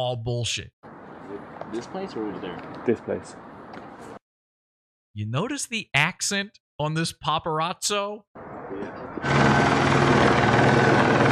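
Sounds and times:
speech: 0:00.0 - 0:00.8, 0:01.7 - 0:04.1, 0:05.2 - 0:10.1
helicopter rotor chop and engine roar overhead: 0:08.4 - 0:11.2.

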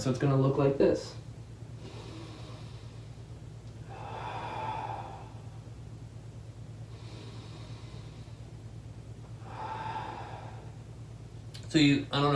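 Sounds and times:
speech: 0:00.0 - 0:01.3, 0:11.7 - 0:12.3
steady low hum: 0:00.0 - 0:12.3
person breathing deeply during a floor breathing exercise: 0:01.7 - 0:11.4.

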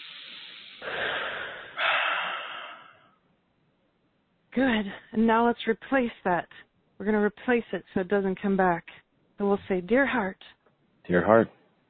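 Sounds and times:
big deep breath in a guided relaxation exercise: 0:00.0 - 0:03.2
speech: 0:04.6 - 0:11.6.

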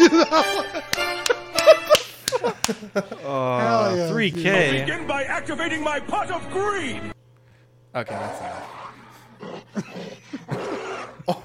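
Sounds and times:
laughter: 0:00.0 - 0:04.9, 0:09.5 - 0:11.4
speech: 0:04.3 - 0:07.1, 0:07.9 - 0:08.6
gorilla roaring: 0:08.0 - 0:11.4.

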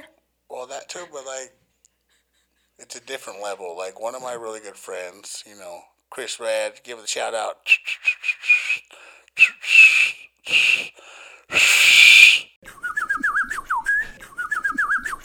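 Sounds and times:
speech: 0:00.9 - 0:01.6, 0:02.8 - 0:08.4
neighborhood signal whistle: 0:07.7 - 0:15.2.

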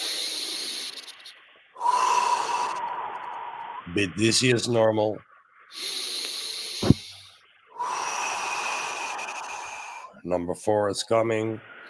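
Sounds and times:
deep breath drawn in through the nose during a guided breathing exercise: 0:00.0 - 0:01.1, 0:01.8 - 0:03.8, 0:05.7 - 0:10.2
speech: 0:03.9 - 0:06.0, 0:10.3 - 0:11.7.

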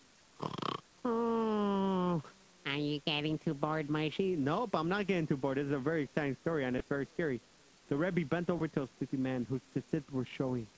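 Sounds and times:
drunk people snoring on the floor of an inn's hall: 0:00.4 - 0:02.1
speech: 0:02.8 - 0:10.7.

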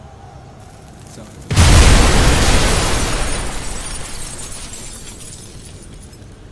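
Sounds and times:
shattering, tumbling debris from an exploded building: 0:00.7 - 0:06.4
building exploding during a storm: 0:01.5 - 0:05.2.

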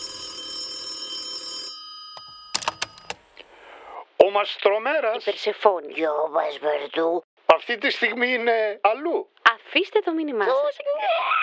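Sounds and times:
bookshop telephone ringing, bright metallic ring: 0:00.0 - 0:03.3
speech: 0:04.4 - 0:11.3.

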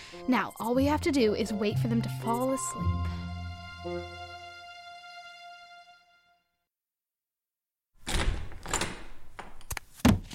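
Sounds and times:
held musical tone: 0:00.0 - 0:06.4
speech: 0:00.1 - 0:04.2
person bumping into a door and a counter in a dark kitchen: 0:08.0 - 0:10.3.

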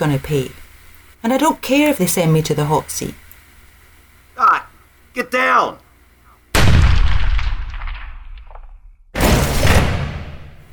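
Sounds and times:
speech: 0:00.0 - 0:00.6, 0:01.2 - 0:03.2, 0:05.2 - 0:05.8
gunshots during a struggle over a gun: 0:06.6 - 0:10.6.

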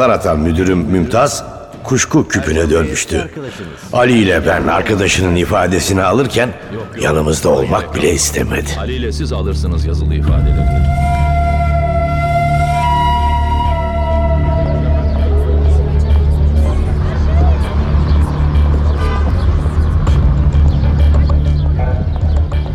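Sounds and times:
speech: 0:00.0 - 0:11.1
indistinct tourist crowd chatter: 0:01.9 - 0:10.4, 0:14.2 - 0:22.3
constant rumble of traffic engines: 0:03.3 - 0:22.7
brief horn-like tone: 0:10.3 - 0:16.2, 0:19.0 - 0:19.5
clip-clopping hooves: 0:20.6 - 0:22.7.

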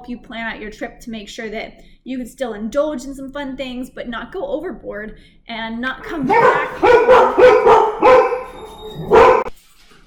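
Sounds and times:
speech: 0:00.0 - 0:07.8
dogs barking excitedly: 0:06.1 - 0:09.5.

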